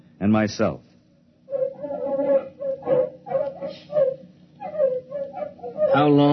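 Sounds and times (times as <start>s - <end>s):
speech: 0.2s - 0.9s, 6.0s - 6.3s
terriers yipping and whining in a field of crops: 1.5s - 6.3s.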